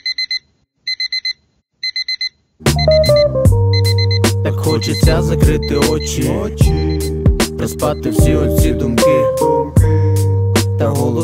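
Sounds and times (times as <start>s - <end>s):
alarm clock ringing with bright electronic beeps: 0.0s - 7.2s
loud music with drums and a melody: 2.6s - 11.2s
speech: 4.6s - 9.6s, 10.8s - 11.2s.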